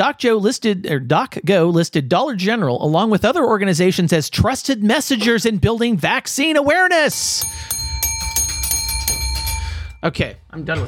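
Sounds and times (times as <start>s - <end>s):
speech: 0.0s - 7.8s, 10.0s - 10.8s
bell ringing: 7.0s - 10.2s.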